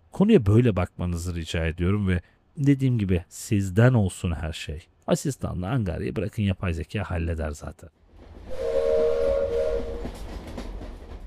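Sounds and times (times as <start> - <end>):
speech: 0.2 - 8.7
train rumbling along the rails: 8.1 - 11.2
train horn: 8.5 - 10.4
rhythmic clacks and rattles of a train on rails: 10.0 - 11.2.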